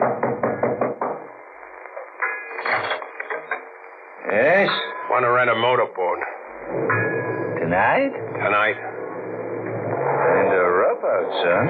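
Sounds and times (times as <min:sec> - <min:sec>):
knocking on a door: 0:00.0 - 0:01.3
noise: 0:01.1 - 0:11.6
speech: 0:04.3 - 0:07.0, 0:07.7 - 0:09.0, 0:10.5 - 0:11.6.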